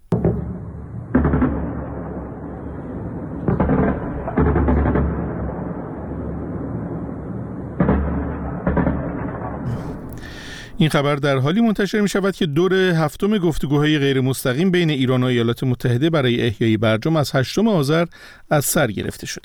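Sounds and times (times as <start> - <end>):
anti-aircraft gunfire during an air-defence drill in Bushehr Iran: 0.1 - 10.1
constant low rumble: 0.4 - 10.2
speech: 10.8 - 19.4.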